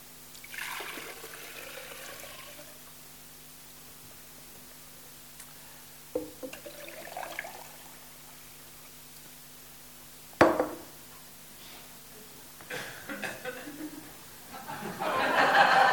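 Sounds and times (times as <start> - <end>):
quiet steady hum: 0.0 - 15.9
water pouring into a jug: 0.4 - 2.8, 6.5 - 8.0
laughter: 12.7 - 15.9.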